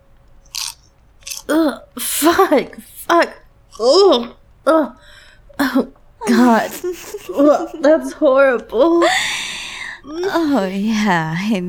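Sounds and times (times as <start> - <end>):
popcorn being chewed: 0.1 - 1.8
speech: 1.5 - 9.3, 10.0 - 11.6.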